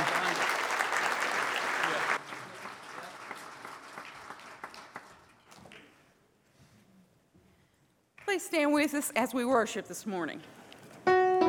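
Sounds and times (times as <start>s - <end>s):
audience clapping hands in praise: 0.0s - 6.0s
speech: 8.4s - 10.6s.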